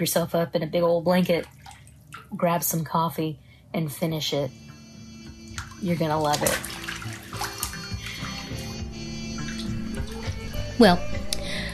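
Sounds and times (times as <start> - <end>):
bathwater sloshing and gurgling as a tub drains: 0.0 - 3.0, 5.3 - 10.8
speech: 0.0 - 4.7, 5.8 - 6.8, 10.8 - 11.2.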